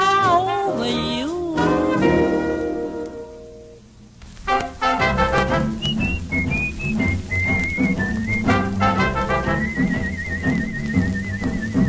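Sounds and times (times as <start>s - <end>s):
lively band accompaniment: 0.2s - 3.7s, 4.4s - 11.8s
person whistling a bright wandering melody: 5.2s - 11.8s.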